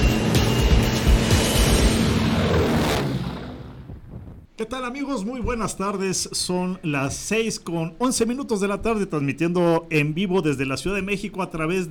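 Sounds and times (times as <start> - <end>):
aircraft engine roar at start of takeoff run: 0.0 - 4.4
speech: 4.6 - 11.8.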